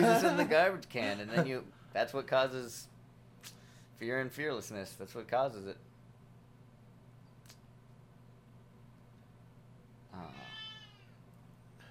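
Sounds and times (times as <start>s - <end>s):
laughter: 0.0s - 1.6s
speech: 0.0s - 5.9s
female cat meowing: 10.2s - 11.2s.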